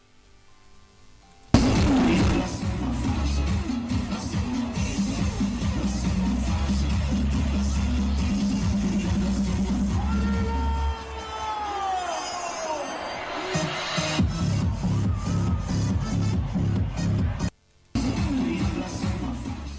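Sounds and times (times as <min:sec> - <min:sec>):
outdoor crowd celebrating Christmas Eve in a town square: 0:01.1 - 0:19.7
steady thumping music from DJs: 0:01.6 - 0:12.6, 0:13.3 - 0:19.7
shrill whistle-like sweeps: 0:11.4 - 0:14.3.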